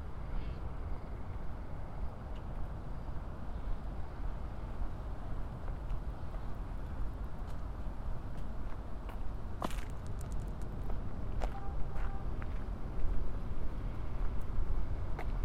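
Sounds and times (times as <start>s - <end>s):
low rumble of city traffic on an outdoor street in Corona: 0.0s - 15.4s.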